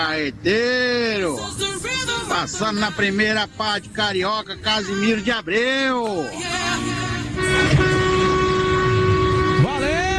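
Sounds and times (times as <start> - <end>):
speech: 0.0 - 7.9
rumbling traffic noise: 0.0 - 10.1
vehicle horn blast: 6.4 - 10.1.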